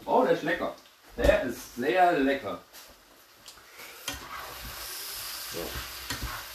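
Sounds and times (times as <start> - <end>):
speech: 0.3 - 2.7
food sizzling in a frying pan: 0.9 - 6.5
spatula scraping and stirring food in a frying pan: 4.0 - 6.5.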